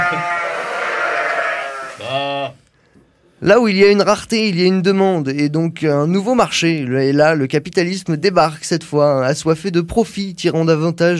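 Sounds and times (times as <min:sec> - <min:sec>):
sheep bleating: 0:00.0 - 0:02.6
speech: 0:03.4 - 0:11.1.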